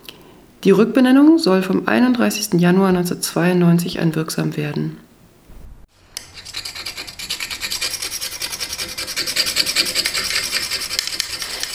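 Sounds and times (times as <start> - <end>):
speech: 0.6 - 5.1
tool scraping layers off a sign: 6.2 - 11.7.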